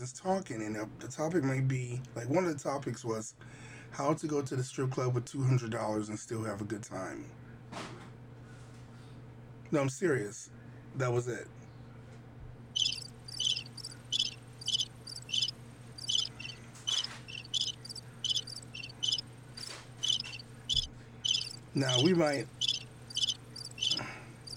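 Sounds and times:
speech: 0.0s - 8.0s, 9.7s - 11.6s, 21.8s - 22.6s
low constant hum: 0.0s - 24.5s
cricket chirping: 12.8s - 24.5s.

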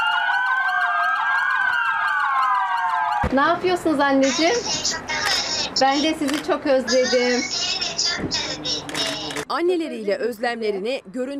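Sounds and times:
police and fire sirens wailing: 0.0s - 4.6s
speech: 3.3s - 8.8s, 9.5s - 11.3s.

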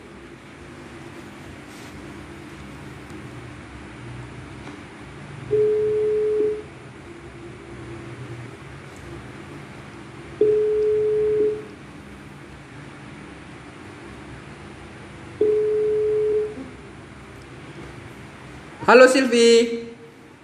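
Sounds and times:
telephone ringback tone of a call being placed: 5.5s - 6.7s, 10.4s - 11.7s, 15.4s - 16.7s
speech: 18.9s - 19.8s.

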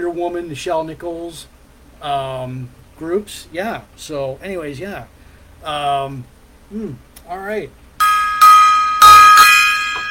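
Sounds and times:
speech: 0.1s - 7.8s
gong being struck: 8.0s - 10.1s.

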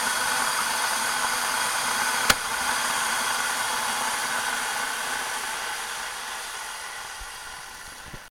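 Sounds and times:
water boiling in a kettle: 0.2s - 8.3s
sharp click: 2.3s - 2.5s.

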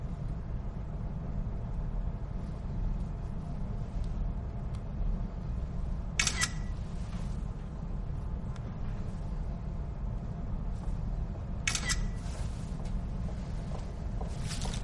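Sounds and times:
low rumbling hum in a garage: 0.0s - 14.8s
camera shutter clicks photographing a car driver door in a garage: 6.2s - 6.7s, 11.7s - 12.1s.

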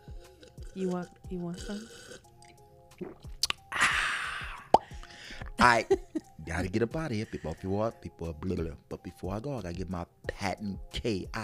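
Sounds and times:
person sipping Moscato wine: 0.0s - 5.6s
speech: 0.8s - 2.2s, 5.6s - 11.4s
wet mouth smacks and clicks: 1.6s - 3.7s, 4.6s - 5.6s.

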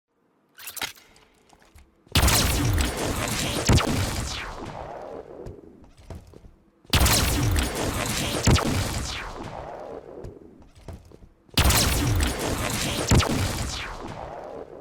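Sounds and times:
video game beam rifle energy blasts with falling sweep: 2.1s - 5.8s, 6.9s - 10.6s, 11.6s - 14.7s.

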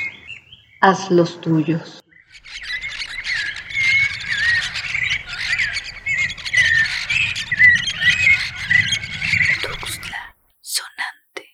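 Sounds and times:
speech: 0.8s - 2.6s
dense flock of parrots and parakeets chattering: 2.2s - 10.3s.

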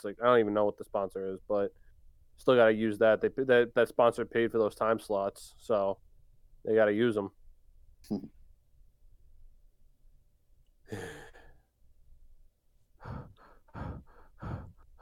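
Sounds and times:
speech: 0.0s - 6.0s, 6.6s - 7.4s, 8.0s - 8.4s, 10.9s - 11.2s
heavy breathing: 10.9s - 11.7s, 13.0s - 15.0s
loud ragged panting breaths: 13.0s - 15.0s.

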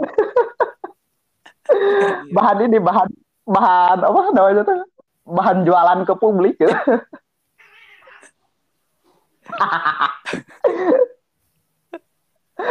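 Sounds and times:
speech: 1.8s - 7.2s, 9.5s - 11.0s
cat meowing: 7.6s - 8.4s.

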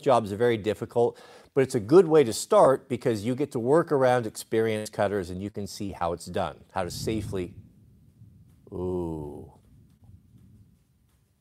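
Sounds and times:
speech: 0.0s - 7.6s, 8.7s - 9.6s
distant thunder rumble from a lightning storm: 6.8s - 10.8s.

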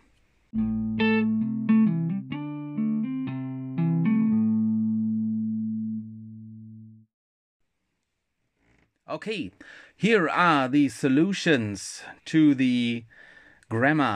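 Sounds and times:
bright plucked melody: 0.6s - 7.0s
sustained synth chords: 0.6s - 7.0s
speech: 9.2s - 14.1s.

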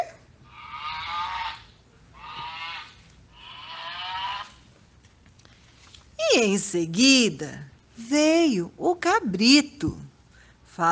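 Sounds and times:
ox mooing: 0.6s - 4.6s
speech: 6.4s - 10.0s, 10.8s - 10.9s.

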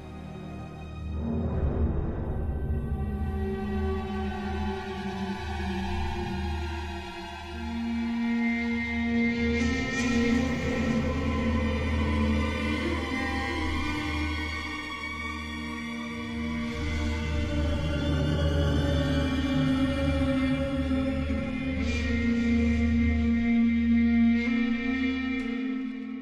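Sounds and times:
eerie orchestral music with long sustained tones: 0.0s - 26.2s.

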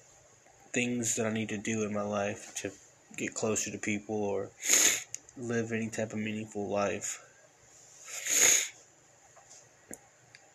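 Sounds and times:
speech: 0.7s - 7.3s
person sniffling, moved to tears by a Christmas song: 4.6s - 5.2s, 8.0s - 8.8s.

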